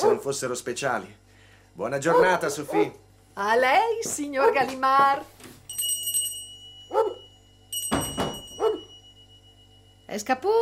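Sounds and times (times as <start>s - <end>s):
dog barking: 0.0s - 0.3s, 2.1s - 3.0s, 6.9s - 7.2s, 8.6s - 8.9s
speech: 0.1s - 5.6s, 10.1s - 10.6s
faint ringing: 5.6s - 10.6s
brief clattering knock: 7.9s - 8.6s.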